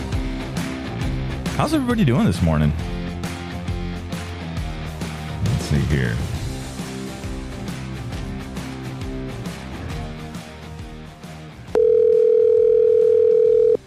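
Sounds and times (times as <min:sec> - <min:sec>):
music: 0:00.0 - 0:13.8
speech: 0:01.6 - 0:03.0, 0:05.9 - 0:06.3
ringback tone from an outgoing phone call: 0:11.7 - 0:13.8.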